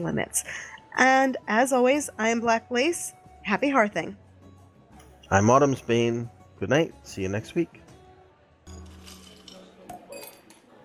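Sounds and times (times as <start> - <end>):
speech: 0.0 - 4.2, 5.3 - 7.8
ice cubes clinking against a glass: 8.7 - 10.5.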